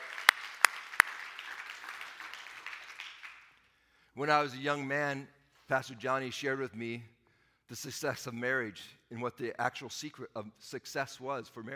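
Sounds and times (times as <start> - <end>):
hand claps: 0.0 - 3.7
speech: 4.2 - 11.7.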